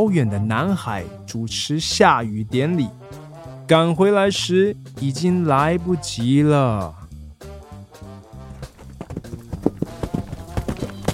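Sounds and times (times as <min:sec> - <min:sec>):
speech: 0:00.0 - 0:03.0, 0:03.7 - 0:07.0
steady music: 0:00.0 - 0:11.1
horse hooves galloping in a race: 0:08.0 - 0:11.1.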